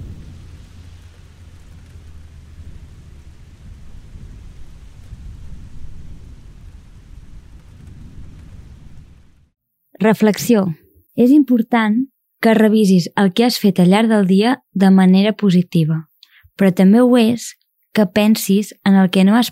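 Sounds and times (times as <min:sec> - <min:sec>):
deep low rumble: 0:00.0 - 0:09.6
steady rain: 0:00.0 - 0:09.6
speech: 0:10.0 - 0:19.5.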